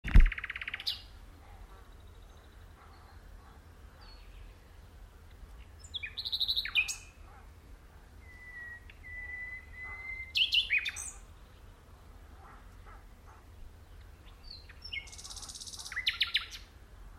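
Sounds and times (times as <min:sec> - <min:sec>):
Luscinia megarhynchos common nightingale song: 0:00.1 - 0:17.1.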